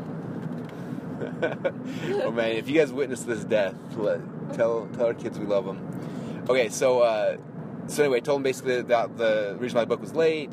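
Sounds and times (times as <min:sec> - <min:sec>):
car engine roaring inside the vehicle while passing another car: 0:00.0 - 0:10.5
road noise: 0:00.0 - 0:10.5
speech: 0:01.4 - 0:10.5.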